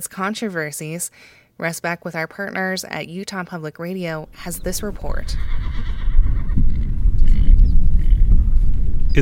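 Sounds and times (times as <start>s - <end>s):
speech: 0.0s - 5.7s
steady low rumble of wind: 4.2s - 9.1s
wild horse neighing outdoors in Skull Valley Utah: 4.3s - 8.2s.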